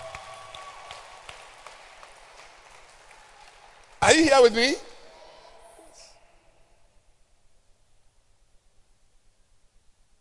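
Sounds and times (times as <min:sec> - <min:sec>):
crowd clapping: 0:00.0 - 0:04.8
speech: 0:04.1 - 0:04.9.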